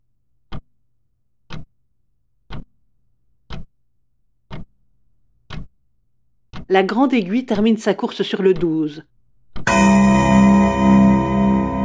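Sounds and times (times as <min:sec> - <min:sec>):
pendulum clock ticking with dull heavy tick-tock: 0:02.5 - 0:02.7, 0:03.5 - 0:03.7, 0:04.5 - 0:04.7, 0:05.5 - 0:05.7, 0:06.5 - 0:11.8
speech: 0:06.7 - 0:09.1.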